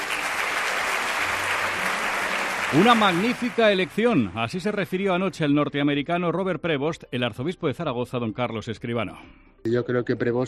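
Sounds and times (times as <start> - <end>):
audience applause at a gala: 0.0 - 4.6
speech: 2.7 - 10.4.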